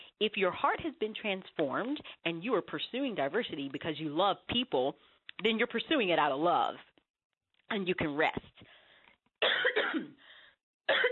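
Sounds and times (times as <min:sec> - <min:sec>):
speech: 0:00.2 - 0:06.9, 0:07.7 - 0:08.7
person with a tickle in the throat coughing: 0:09.4 - 0:10.2.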